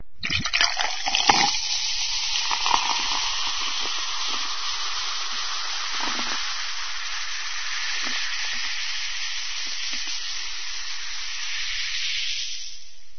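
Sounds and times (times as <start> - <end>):
soda pouring: 0.2 - 13.1.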